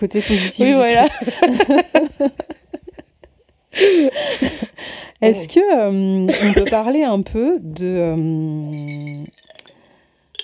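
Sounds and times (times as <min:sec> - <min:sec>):
speech: 0:00.0 - 0:02.6, 0:03.8 - 0:09.4
laughter: 0:00.0 - 0:04.8, 0:06.3 - 0:06.8
ice cubes clinking in a glass: 0:08.7 - 0:10.4.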